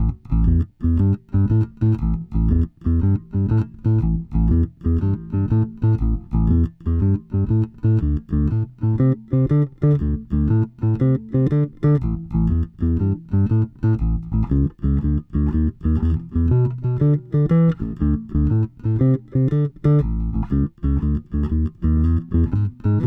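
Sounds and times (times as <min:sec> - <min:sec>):
blues bass: 0:00.0 - 0:23.0.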